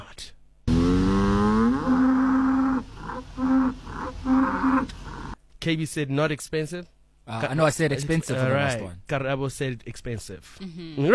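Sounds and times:
cow mooing: 0:00.7 - 0:05.4
speech: 0:05.6 - 0:11.1.

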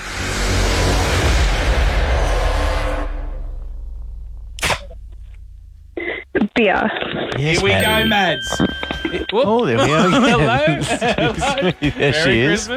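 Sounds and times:
car driving past: 0:00.0 - 0:06.0
laughter: 0:06.0 - 0:12.7
speech: 0:06.6 - 0:12.7.

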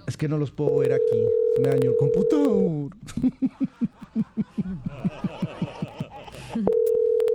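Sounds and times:
speech: 0:00.2 - 0:05.6, 0:06.4 - 0:06.9
steady electronic phone-line tone: 0:00.9 - 0:02.4, 0:06.7 - 0:07.3
rhythmic snickering laughter: 0:03.0 - 0:06.8.

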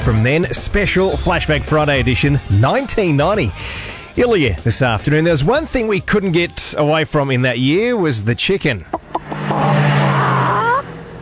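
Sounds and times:
speech: 0:00.0 - 0:09.0
Toyota Camry twin-cam fuel-injected multi-valve engine revving: 0:08.9 - 0:11.2.

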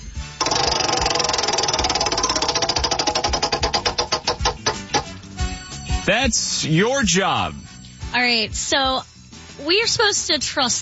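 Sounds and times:
prize wheel spinning with rapid clicking ticks: 0:00.4 - 0:05.1
speech: 0:06.1 - 0:10.8.

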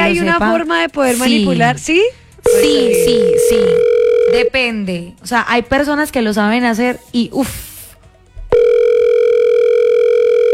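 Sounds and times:
speech: 0:00.1 - 0:07.7
telephone ringing tone of an unanswered call: 0:02.5 - 0:04.6, 0:08.5 - 0:10.5.

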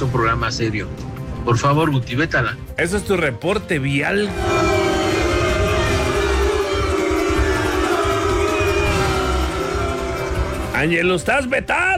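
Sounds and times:
speech: 0:00.0 - 0:04.9, 0:10.8 - 0:11.9
siren sound effect: 0:04.3 - 0:10.8.

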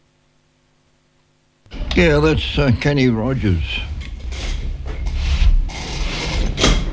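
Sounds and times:
speech: 0:02.0 - 0:03.9
chair scraping and sliding across a hard floor: 0:03.4 - 0:06.9.

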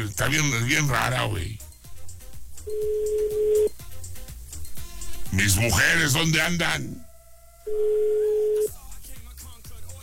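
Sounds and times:
speech: 0:00.0 - 0:01.6, 0:05.4 - 0:07.1, 0:07.7 - 0:08.8
busy rhythmic music bed: 0:00.0 - 0:07.0, 0:08.6 - 0:10.0
electronic telephone keypad tone: 0:02.7 - 0:03.7, 0:07.7 - 0:08.7.

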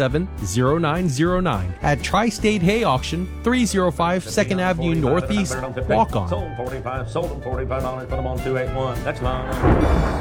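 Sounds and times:
speech: 0:00.0 - 0:10.1
low thunder rumbling: 0:09.3 - 0:10.1.

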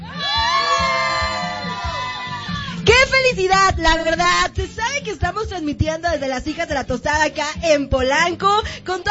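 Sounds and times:
crowd cheering and shouting at a street celebration of a Mexican football victory: 0:00.0 - 0:02.9
speech: 0:03.2 - 0:09.0.

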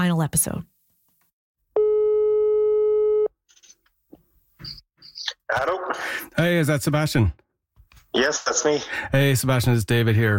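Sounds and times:
speech: 0:00.0 - 0:00.7, 0:05.5 - 0:07.4, 0:08.2 - 0:10.3
telephone ringing tone on an outgoing call: 0:01.8 - 0:03.3.

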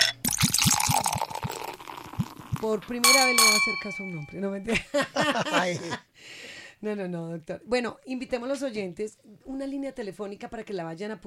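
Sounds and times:
drink glugging from a bottle as it is poured: 0:00.0 - 0:02.8
speech: 0:02.6 - 0:06.1, 0:06.8 - 0:11.2
laughter: 0:04.7 - 0:06.0.

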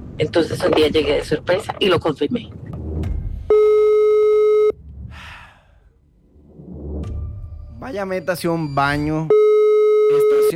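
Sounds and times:
speech: 0:00.2 - 0:02.6, 0:07.9 - 0:09.4, 0:10.1 - 0:10.5
phone ringing with an incoming call: 0:03.5 - 0:04.8, 0:09.3 - 0:10.5
soft breathy noises: 0:05.0 - 0:06.2.

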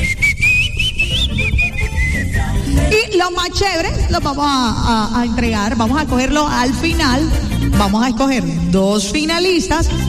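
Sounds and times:
person whistling a song tune: 0:00.0 - 0:02.6
speech: 0:03.2 - 0:10.0.

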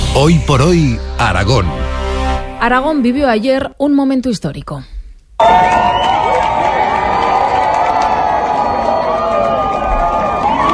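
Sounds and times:
speech: 0:00.2 - 0:02.0, 0:02.6 - 0:05.9
hundreds of people on a stone bridge shouting and cheering at a total eclipse: 0:05.4 - 0:10.7
whoops from an outdoor crowd: 0:05.4 - 0:10.7.

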